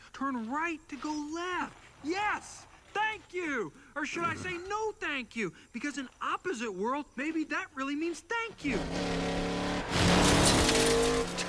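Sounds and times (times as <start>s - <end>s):
speech: 0.2s - 10.0s
car engine humming: 8.5s - 11.4s
car tires screeching and skidding: 8.6s - 11.4s.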